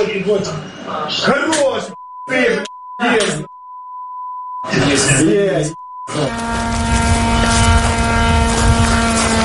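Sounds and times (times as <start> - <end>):
speech: 0.0 - 3.5, 4.6 - 6.7
short beep tone: 1.9 - 6.3
attack drone flying with buzzing whine: 4.6 - 9.4.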